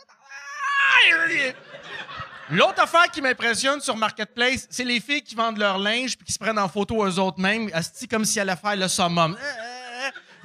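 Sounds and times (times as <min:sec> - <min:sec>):
laughter: 0:00.0 - 0:03.7, 0:09.3 - 0:10.4
monkey screeching: 0:00.2 - 0:01.3
speech: 0:01.1 - 0:01.9, 0:02.5 - 0:09.7.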